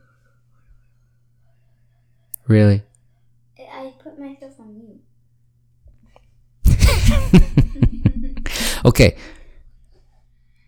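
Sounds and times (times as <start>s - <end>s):
low electrical hum: 0.0s - 10.6s
speech: 2.4s - 2.9s, 7.3s - 7.6s, 8.8s - 9.4s
laughter: 6.7s - 8.9s
soft airy breathing into a microphone: 8.4s - 9.8s.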